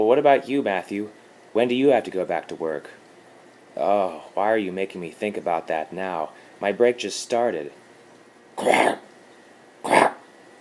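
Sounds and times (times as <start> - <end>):
speech: 0.0 - 3.0, 3.8 - 7.8, 8.6 - 9.0
dog coughing and hacking: 8.6 - 9.0, 9.8 - 10.2.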